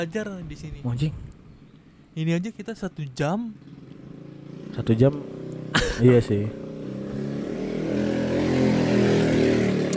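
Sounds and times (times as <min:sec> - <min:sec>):
speech: 0:00.0 - 0:01.4, 0:02.2 - 0:03.8, 0:04.7 - 0:06.6
motorcycle passing by: 0:03.5 - 0:09.9.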